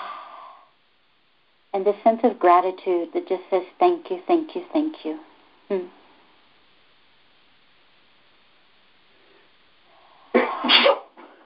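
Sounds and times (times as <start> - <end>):
speech: 1.8 - 6.0
single sharp sneeze: 10.3 - 11.3.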